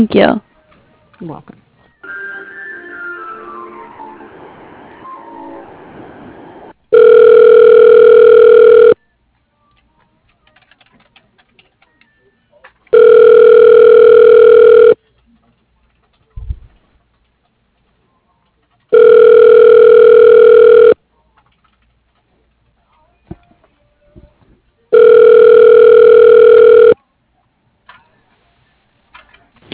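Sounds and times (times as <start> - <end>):
speech: 0.0 - 0.5, 1.2 - 1.6
telephone line ringing back during call transfer to voicemail: 6.9 - 9.0, 12.9 - 15.0, 18.9 - 21.0, 24.9 - 27.0.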